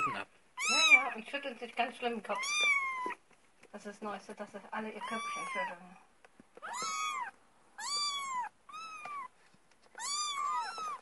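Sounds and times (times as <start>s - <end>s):
cat meowing: 0.0s - 1.2s, 2.3s - 3.2s, 5.0s - 5.8s, 6.6s - 11.0s
speech: 1.3s - 6.9s.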